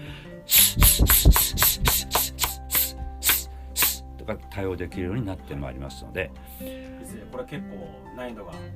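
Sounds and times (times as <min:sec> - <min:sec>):
steady low musical backdrop: 0:00.0 - 0:08.7
voice making rapid s hisses: 0:00.5 - 0:04.0
speech: 0:04.3 - 0:08.7.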